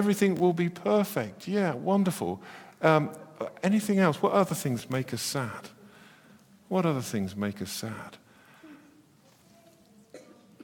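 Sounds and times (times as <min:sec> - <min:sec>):
speech: 0:00.0 - 0:05.8, 0:06.7 - 0:08.2
cough: 0:10.1 - 0:10.6.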